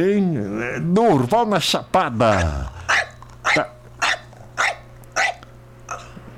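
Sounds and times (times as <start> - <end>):
speech: 0.0 - 2.8, 3.6 - 3.8
steady low electrical hum: 0.0 - 6.3
dog barking: 2.1 - 5.5.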